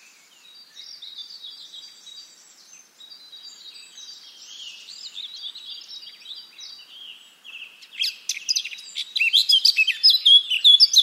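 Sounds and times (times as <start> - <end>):
Eurasian blackcap (Sylvia atricapilla) warbling song: 0.0 - 11.0.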